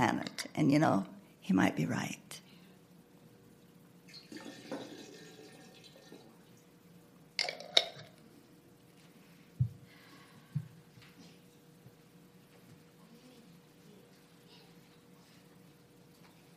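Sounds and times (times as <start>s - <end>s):
speech: 0.0s - 2.4s
water poured and splashing into a container during a church ceremony: 4.1s - 6.5s.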